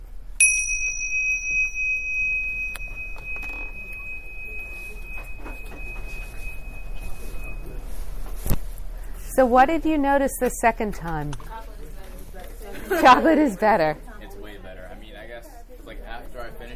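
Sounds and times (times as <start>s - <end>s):
single bell struck to end a section of an exercise: 0.4s - 8.4s
speech: 9.4s - 11.6s, 12.9s - 14.1s
laughter: 12.6s - 14.0s.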